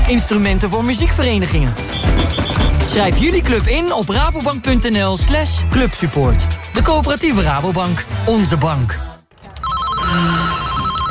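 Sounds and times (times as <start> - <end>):
speech: 0.1 - 9.1, 10.1 - 10.6
telephone bell ringing with a rapid trilling warble: 9.6 - 11.0.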